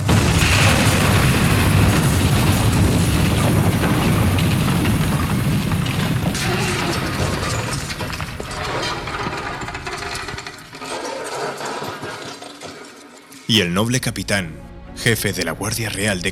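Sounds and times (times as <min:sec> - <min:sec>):
massive factory explosion boom: 0:00.0 - 0:06.8
crackling explosion debris: 0:00.0 - 0:13.5
speech: 0:13.5 - 0:16.3.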